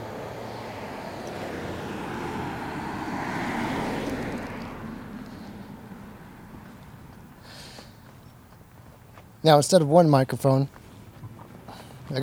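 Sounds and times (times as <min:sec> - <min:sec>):
car driving by outdoors in a neighborhood: 0:00.0 - 0:08.7
speech: 0:09.4 - 0:10.8.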